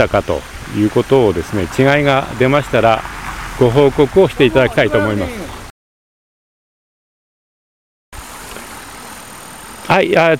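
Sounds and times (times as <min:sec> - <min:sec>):
speech: 0:00.0 - 0:05.6, 0:09.9 - 0:10.3
car braking: 0:01.4 - 0:05.7.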